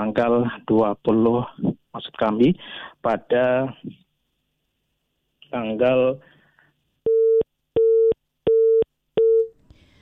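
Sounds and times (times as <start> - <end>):
speech: 0.0 - 4.0, 5.5 - 6.3
busy tone on a phone line after a call dropped: 7.1 - 9.5.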